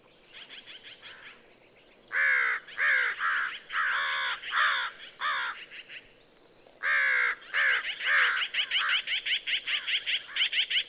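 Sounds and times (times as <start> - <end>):
American crow cawing: 2.1 - 5.8, 6.8 - 10.5.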